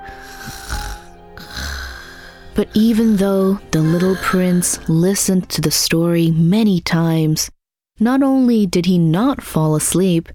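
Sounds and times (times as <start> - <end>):
pig snoring: 0.1 - 4.9
speech: 2.6 - 10.3.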